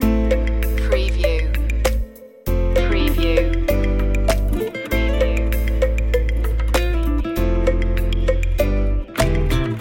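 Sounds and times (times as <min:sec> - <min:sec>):
electro latino music loop: 0:00.0 - 0:09.7.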